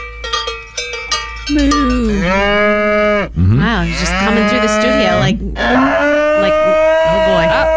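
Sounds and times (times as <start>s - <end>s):
metallic cowbell clangs: 0.0s - 2.7s
speech: 1.5s - 7.7s
long loud cow moo sliding downward in pitch: 2.2s - 7.7s.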